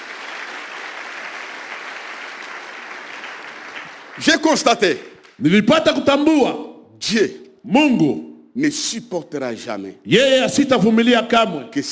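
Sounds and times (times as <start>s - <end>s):
church congregation applauding: 0.0s - 6.0s
speech: 4.2s - 11.8s.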